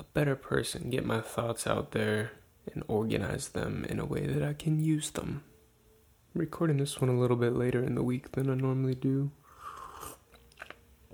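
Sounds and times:
speech: 0:00.2 - 0:05.5, 0:06.3 - 0:09.4
slurping sip of a hot drink: 0:09.4 - 0:11.1.

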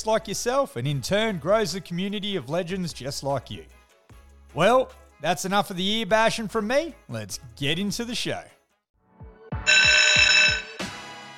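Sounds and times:
speech: 0:00.0 - 0:03.8, 0:04.5 - 0:08.6
loud electronic buzzer: 0:09.7 - 0:10.9.

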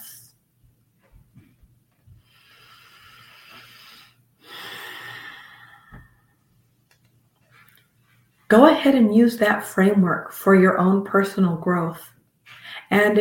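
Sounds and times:
soft breathing during a guided breathing exercise: 0:01.4 - 0:06.5, 0:12.4 - 0:12.9
deep breath taken during a breathing exercise: 0:02.1 - 0:06.4
speech: 0:08.5 - 0:12.1, 0:12.9 - 0:13.1.

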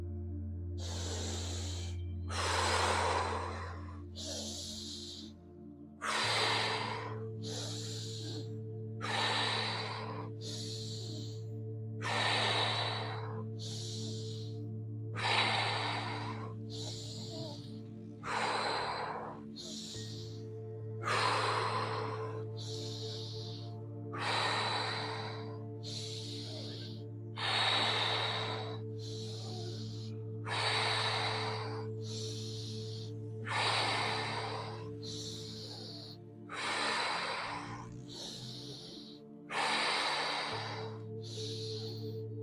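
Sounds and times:
rapid forceful nasal tummo breathing: 0:00.0 - 0:42.4.

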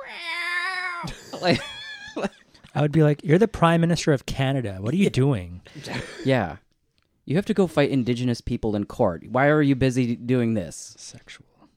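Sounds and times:
human voice imitating a cat's meow: 0:00.0 - 0:01.1
speech: 0:01.0 - 0:06.6, 0:07.2 - 0:11.5.

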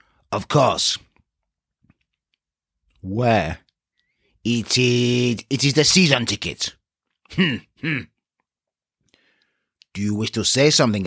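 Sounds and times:
speech: 0:00.3 - 0:01.1, 0:03.0 - 0:03.6, 0:04.4 - 0:08.1, 0:10.0 - 0:11.0
gruff snorting throat-clearing grunts: 0:07.3 - 0:08.2.

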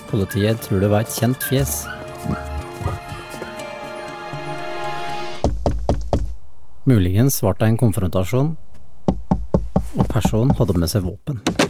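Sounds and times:
speech: 0:00.1 - 0:03.0, 0:06.9 - 0:08.6, 0:10.0 - 0:11.5
low droning sound: 0:04.4 - 0:09.8
heavy hollow knocks on a front door: 0:05.4 - 0:06.4, 0:09.0 - 0:10.7
soft thumps: 0:05.4 - 0:06.9, 0:07.9 - 0:10.9.

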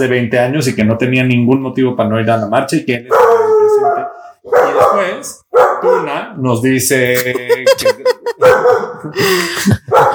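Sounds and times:
speech: 0:00.0 - 0:03.2, 0:04.8 - 0:09.8
dog barking: 0:03.1 - 0:06.3, 0:08.4 - 0:09.1, 0:09.8 - 0:10.1
laughter: 0:07.1 - 0:10.1.

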